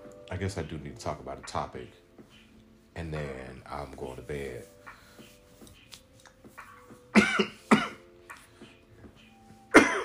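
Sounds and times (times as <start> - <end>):
speech: 0.4 - 2.0, 3.0 - 4.8, 7.4 - 7.6
harsh coughing: 7.1 - 8.1, 9.7 - 10.0.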